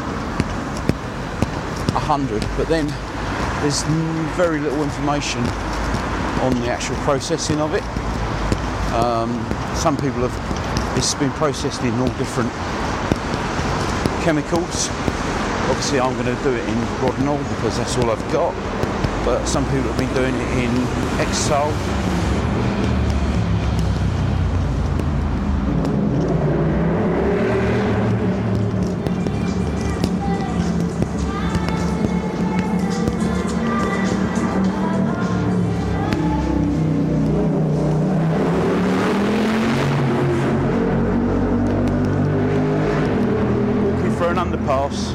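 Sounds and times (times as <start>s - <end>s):
loud road traffic rumbling: 0.0s - 45.1s
vehicles passing with engine noise: 0.0s - 45.1s
speech: 2.0s - 5.8s, 6.4s - 8.1s, 8.9s - 12.9s, 14.3s - 15.0s, 15.7s - 22.3s.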